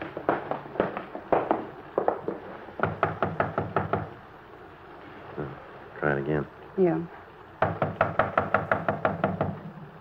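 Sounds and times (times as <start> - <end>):
police officers knocking on a wooden front door: 0.3 - 4.2, 7.6 - 9.7
speech: 6.1 - 7.8.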